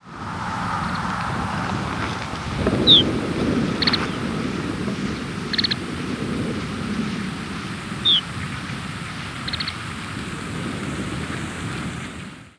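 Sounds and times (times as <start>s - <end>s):
low rumbling noise: 0.0s - 12.5s
steady loud wind: 0.0s - 12.5s
Lapland longspur calling: 2.8s - 3.1s, 8.0s - 8.3s.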